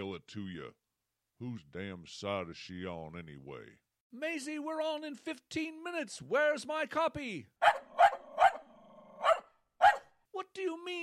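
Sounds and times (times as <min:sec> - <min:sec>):
speech: 0:00.0 - 0:00.8, 0:01.4 - 0:07.8
dog barking: 0:07.6 - 0:10.2.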